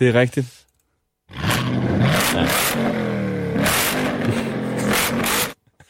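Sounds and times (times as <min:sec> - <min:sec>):
speech: 0:00.0 - 0:00.7, 0:02.3 - 0:04.4
Corvette sports car engine revving: 0:01.3 - 0:05.6.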